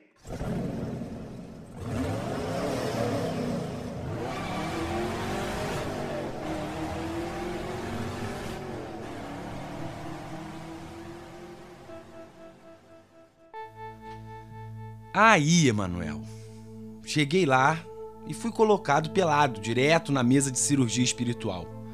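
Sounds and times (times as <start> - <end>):
car engine revving and accelerating as it pulls away: 0.0 - 13.2
speech: 15.2 - 16.4, 17.1 - 21.8.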